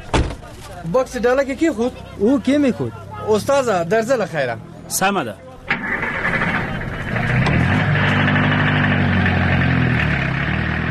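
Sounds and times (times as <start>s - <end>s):
speech: 0.7s - 6.0s
taxi car engine running with a low droning hum: 5.6s - 10.8s.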